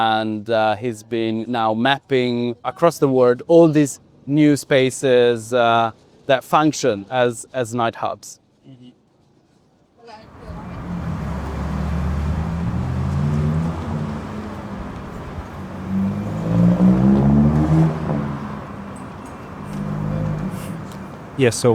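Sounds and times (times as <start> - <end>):
speech: 0.0 - 9.0, 21.4 - 21.7
bus engine droning heard from inside the bus at night: 10.2 - 21.7.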